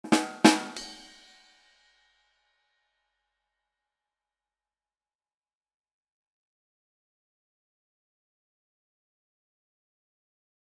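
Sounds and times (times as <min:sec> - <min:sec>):
drum rimshot sting with cymbal: 0:00.0 - 0:01.3.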